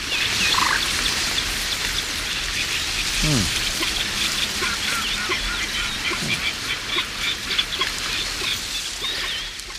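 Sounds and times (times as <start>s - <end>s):
light wind rustling through reeds: 0.0s - 9.7s
reed-bed birds chattering and calling: 0.0s - 9.7s
speech: 3.2s - 3.6s
low voice murmuring: 3.2s - 3.7s.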